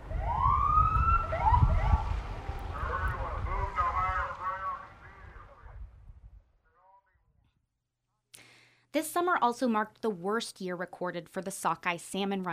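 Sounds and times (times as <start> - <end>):
fire and police vehicle sirens wailing and yelping: 0.0 - 5.5
low rumbling background: 0.0 - 6.5
speech: 8.9 - 12.5.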